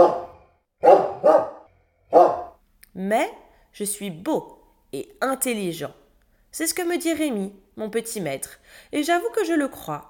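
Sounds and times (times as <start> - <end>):
dog barking with loud sharp woofs: 0.0 - 2.6
speech: 3.0 - 10.0.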